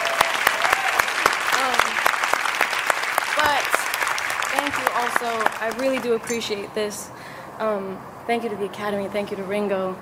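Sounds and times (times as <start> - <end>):
scattered voices whooping and cheering: 0.0 - 2.0
large crowd applauding: 0.0 - 6.4
speech: 5.2 - 10.0.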